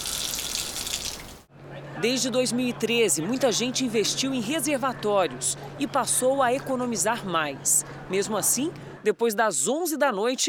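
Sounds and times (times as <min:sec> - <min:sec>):
water running from an opened tap in São Paulo, Brazil: 0:00.0 - 0:01.4
speech: 0:02.0 - 0:10.4.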